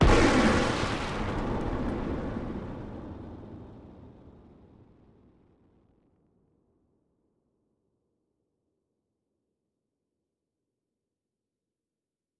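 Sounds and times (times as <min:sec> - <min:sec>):
big gun firing: 0:00.0 - 0:03.8.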